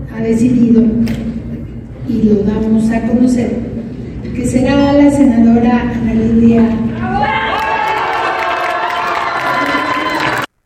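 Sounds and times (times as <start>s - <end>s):
speech: 0.2s - 1.3s, 2.1s - 3.7s, 4.4s - 7.5s
supporters shouting and cheering in jubilation: 6.9s - 10.5s.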